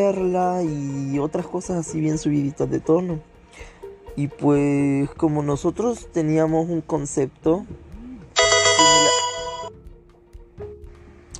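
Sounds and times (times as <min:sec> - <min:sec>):
speech: 0:00.0 - 0:07.8
phone notification chime: 0:08.4 - 0:09.7.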